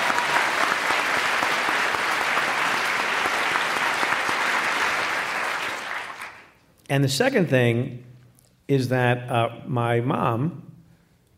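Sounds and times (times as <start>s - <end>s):
audience applause at a live show: 0.0s - 6.5s
speech: 6.9s - 8.1s, 8.7s - 10.7s.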